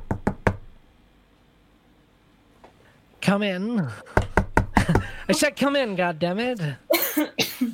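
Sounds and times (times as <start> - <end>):
firm knocks on a wooden door: 0.0 - 0.8, 4.2 - 5.1
speech: 3.3 - 4.2, 4.9 - 7.7.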